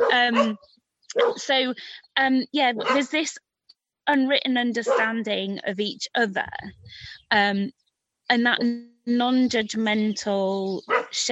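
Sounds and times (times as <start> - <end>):
several dogs barking: 0.0 - 1.5, 2.8 - 3.2, 4.8 - 5.2, 10.8 - 11.2
speech: 0.1 - 3.5, 4.1 - 11.3.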